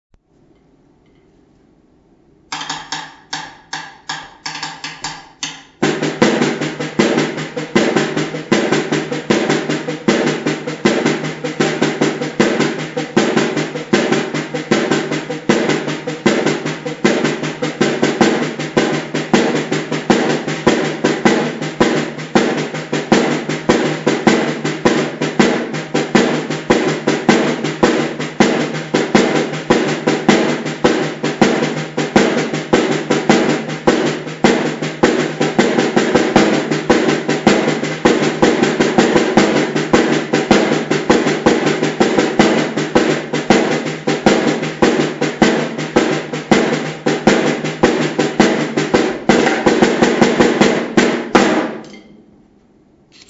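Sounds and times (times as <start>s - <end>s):
reggae snare drum: 2.5s - 52.0s.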